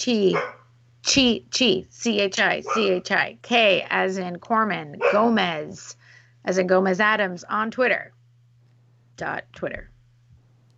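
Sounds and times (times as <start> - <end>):
speech: 0.0 - 8.2, 9.2 - 9.9
low steady hum: 0.0 - 10.7
dog barking outside an office: 0.3 - 0.6, 2.6 - 3.0, 5.0 - 5.4.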